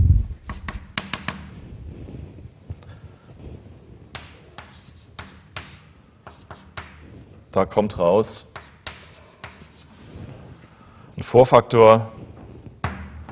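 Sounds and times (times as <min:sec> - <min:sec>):
handwriting scratches writing out a calculation's final result: 0:04.1 - 0:07.2, 0:08.5 - 0:10.0
speech: 0:07.6 - 0:08.6, 0:11.3 - 0:12.2.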